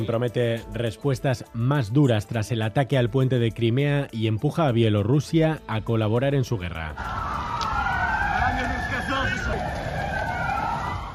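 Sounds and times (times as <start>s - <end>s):
speech: 0.0s - 7.6s
street noise in Kyiv: 6.9s - 11.1s
air raid siren wailing across city streets in Kyiv: 7.0s - 11.1s
traffic rumble in Kyiv: 7.0s - 11.1s.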